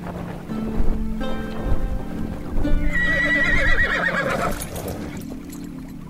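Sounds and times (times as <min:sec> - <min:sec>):
faint watery wash: 0:00.0 - 0:06.0
horse hooves clip-clopping: 0:00.0 - 0:06.0
horse neighing: 0:02.9 - 0:05.2.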